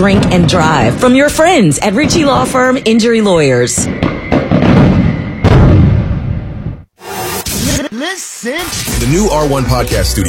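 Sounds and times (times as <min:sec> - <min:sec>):
speech: 0:00.0 - 0:04.2, 0:08.1 - 0:10.2
Fourth of July fireworks exploding: 0:00.0 - 0:06.8.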